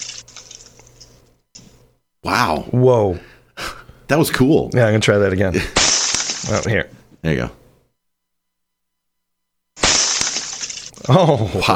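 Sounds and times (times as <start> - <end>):
tinkling spray of glass fragments: 0.0 - 1.1, 5.8 - 6.7, 9.8 - 11.2
speech: 2.2 - 3.3, 4.1 - 5.8, 6.4 - 7.6, 11.1 - 11.7
glass shattering on the ground: 5.8 - 6.7, 9.8 - 11.2.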